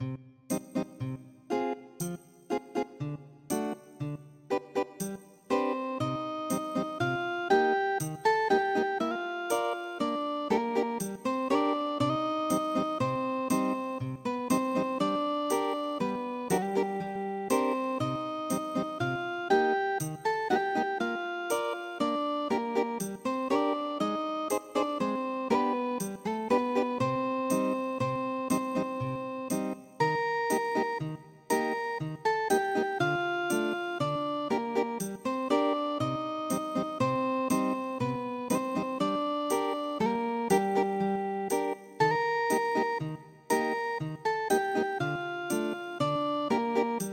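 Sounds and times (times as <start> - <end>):
folk guitar melody: 0.0 - 47.1.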